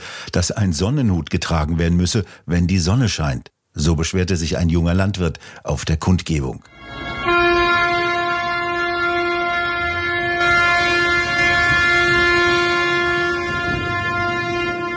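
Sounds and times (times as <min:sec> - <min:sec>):
speech: 0:00.4 - 0:07.0
air horns from tractors and trucks blaring: 0:06.7 - 0:14.9
low rumble of heavy engines moving through city streets: 0:07.9 - 0:14.9.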